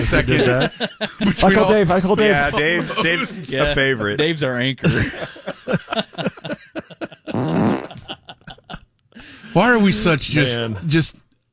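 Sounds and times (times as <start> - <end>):
laughter: 0.0 - 3.8, 4.8 - 8.9
speech: 0.0 - 6.3, 9.6 - 11.2
loud buzzing fart: 7.3 - 8.1.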